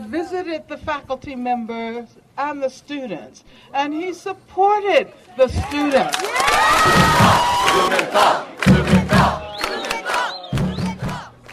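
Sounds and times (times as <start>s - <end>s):
speech: 0.2s - 9.4s
people shouting: 6.3s - 11.3s
large crowd chanting in unison at a rally: 6.8s - 11.4s
whistles: 9.4s - 11.1s.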